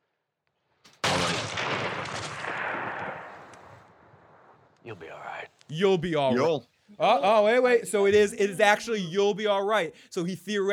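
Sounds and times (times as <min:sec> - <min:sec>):
gunfire burst: 0:00.9 - 0:03.9
speech: 0:04.9 - 0:10.7.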